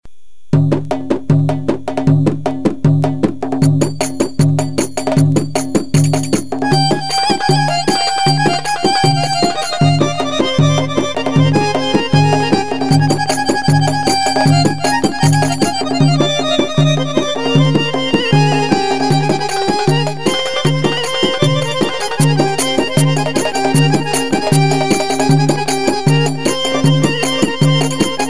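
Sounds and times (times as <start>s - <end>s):
darbuka solo: 0.5s - 28.2s
Arabic accordion playing: 6.6s - 28.2s.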